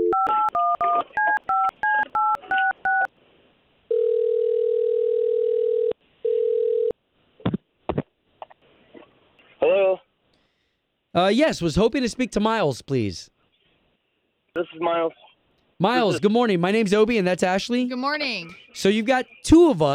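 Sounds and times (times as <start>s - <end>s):
telephone ringing tone: 0.0s - 3.1s, 3.9s - 7.0s
touch-tone beeps of a phone number being dialed: 0.0s - 3.1s
speech: 11.2s - 13.4s, 14.6s - 15.2s, 15.8s - 19.9s.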